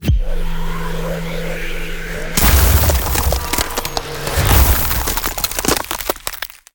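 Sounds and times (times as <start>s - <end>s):
icy vortex ice spell damage sound effect: 2.4s - 6.7s.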